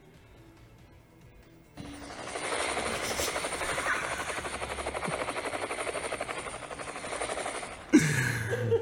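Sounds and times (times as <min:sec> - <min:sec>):
helicopter rotor chopping: 0:01.8 - 0:08.7
laughter: 0:02.8 - 0:05.3, 0:07.6 - 0:08.7.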